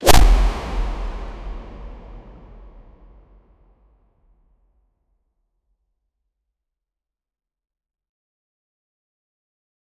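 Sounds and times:
fighting punch sound: 0:00.0 - 0:02.6.

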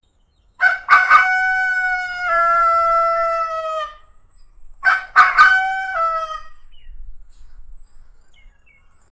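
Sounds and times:
rooster crowing in morning on rustic farm: 0:00.6 - 0:04.1, 0:04.8 - 0:06.7.

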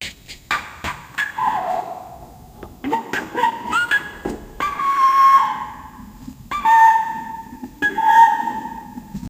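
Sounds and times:
cute elephant call: 0:01.2 - 0:02.2, 0:02.8 - 0:09.2.

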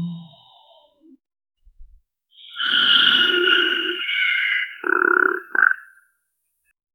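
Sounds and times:
baby dragon chirps: 0:02.4 - 0:06.0.

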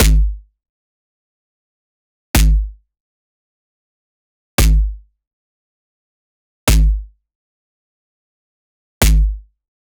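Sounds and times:
808 drum machine bass: 0:00.0 - 0:00.4, 0:02.4 - 0:02.7, 0:04.6 - 0:05.0, 0:06.7 - 0:07.0, 0:09.0 - 0:09.4.

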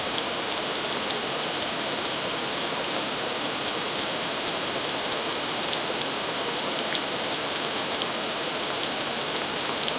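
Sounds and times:
artificial rain: 0:00.0 - 0:09.9.

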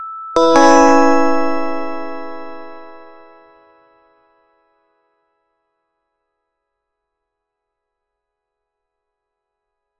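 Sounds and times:
kawaii style cute pop music: 0:00.4 - 0:03.2.

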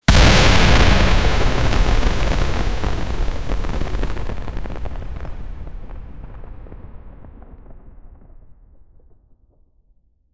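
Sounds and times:
fiery plasma impact: 0:00.0 - 0:06.4.

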